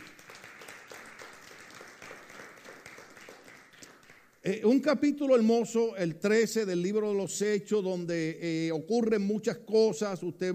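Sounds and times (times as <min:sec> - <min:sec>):
crowd applauding: 0:00.0 - 0:04.4
speech: 0:04.4 - 0:10.5.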